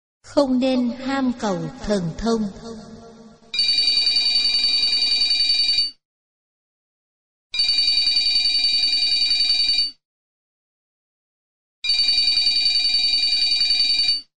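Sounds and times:
speech: 0:00.3 - 0:02.9
telephone ringing with bright buzzing rings: 0:03.5 - 0:06.0, 0:07.6 - 0:10.0, 0:11.8 - 0:14.3.

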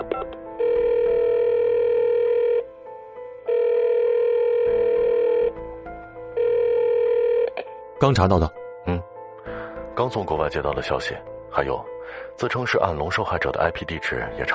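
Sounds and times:
telephone ringback tone while a call is being placed: 0:00.0 - 0:02.7, 0:03.5 - 0:05.6, 0:06.4 - 0:07.6
speech: 0:08.0 - 0:09.0, 0:10.0 - 0:14.5.

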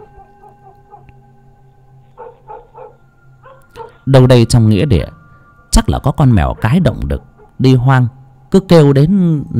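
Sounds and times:
dogs barking in a village at night: 0:00.0 - 0:01.2, 0:02.1 - 0:04.1, 0:06.4 - 0:07.6
low tonal hum: 0:00.0 - 0:09.5
speech: 0:04.0 - 0:05.2, 0:05.8 - 0:09.5.

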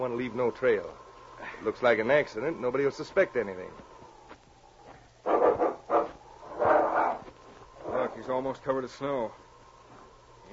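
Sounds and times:
speech: 0:00.0 - 0:01.0, 0:01.6 - 0:03.9, 0:08.2 - 0:09.4
faint low hum: 0:00.0 - 0:10.5
dog barking as it attacks a man in the snow: 0:05.2 - 0:08.2.

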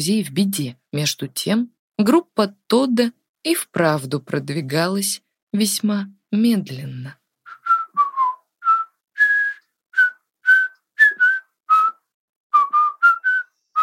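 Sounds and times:
speech: 0:00.0 - 0:07.2
person whistling a cheerful tune while walking a mountain path: 0:07.5 - 0:13.8.

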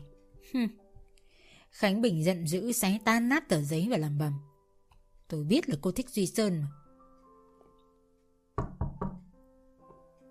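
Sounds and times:
speech: 0:00.5 - 0:00.8, 0:01.8 - 0:04.5, 0:05.3 - 0:06.8
timid knocking on a bedroom door: 0:08.6 - 0:09.3.

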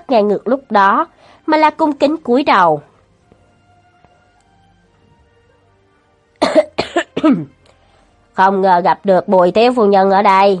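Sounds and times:
speech: 0:00.1 - 0:02.9, 0:06.6 - 0:07.6, 0:08.4 - 0:10.5
light human cough: 0:06.4 - 0:07.5.

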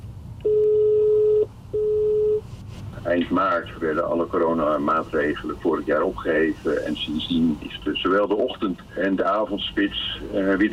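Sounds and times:
telephone call dialing and ringing tone: 0:00.4 - 0:02.4
speech: 0:03.0 - 0:10.7.

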